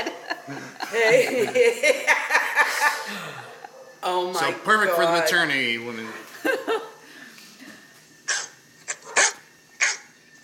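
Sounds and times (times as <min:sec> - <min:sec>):
laughter: 0:00.0 - 0:03.7, 0:06.3 - 0:07.0
speech: 0:00.5 - 0:06.9
dog barking in short sharp bursts: 0:03.5 - 0:04.0, 0:08.3 - 0:10.1.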